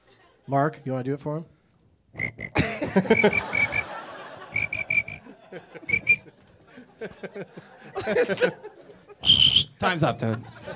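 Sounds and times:
speech: 0:00.5 - 0:01.6, 0:02.2 - 0:03.6, 0:07.0 - 0:10.7
person whistling an imitation of a cricket chirp: 0:02.2 - 0:03.9, 0:04.5 - 0:05.2, 0:05.8 - 0:06.3, 0:09.2 - 0:09.8
people laughing: 0:02.5 - 0:09.3, 0:10.2 - 0:10.7.

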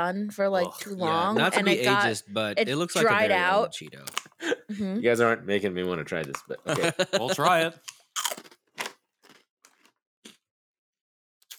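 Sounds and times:
speech: 0:00.0 - 0:08.3
laughter: 0:00.7 - 0:02.3, 0:04.4 - 0:05.0, 0:06.4 - 0:07.8
person biting and chewing a very hard tack cracker: 0:04.1 - 0:04.4, 0:07.8 - 0:10.4.

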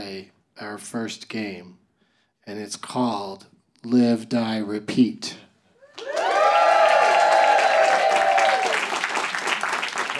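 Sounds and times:
speech: 0:00.0 - 0:01.8, 0:02.4 - 0:05.4
sustained whoop: 0:05.9 - 0:08.8
live audience clapping: 0:05.9 - 0:10.1.

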